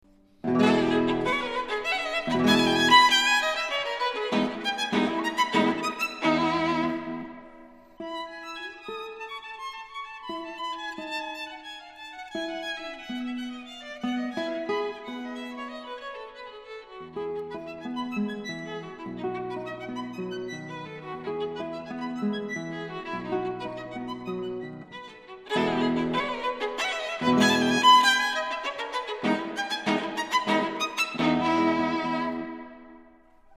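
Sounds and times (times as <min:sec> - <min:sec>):
guitar: 0:00.1 - 0:08.0, 0:17.2 - 0:33.5
violin: 0:00.1 - 0:33.5.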